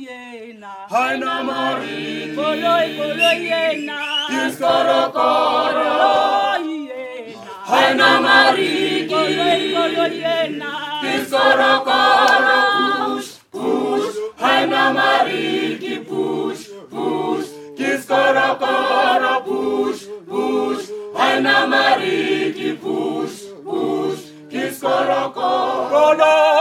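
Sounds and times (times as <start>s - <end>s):
choir singing: 0.8s - 26.5s.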